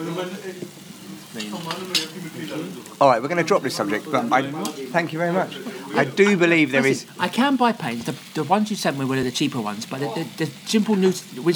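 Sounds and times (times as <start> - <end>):
faint murmuring voices: 0.0 - 7.3
sizzling rice dish crackling and hissing: 0.0 - 11.5
speech: 0.0 - 11.5.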